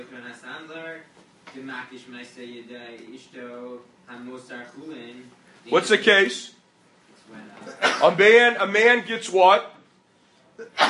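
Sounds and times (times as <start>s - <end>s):
speech: 0.0s - 6.6s, 7.3s - 9.8s, 10.6s - 10.8s
person sneezing: 7.7s - 8.2s, 10.6s - 10.8s.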